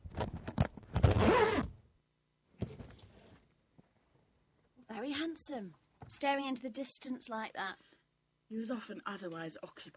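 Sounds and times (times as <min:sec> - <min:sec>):
zip on a bag being pulled: 0:01.0 - 0:01.7
speech: 0:05.4 - 0:07.9, 0:08.5 - 0:09.9.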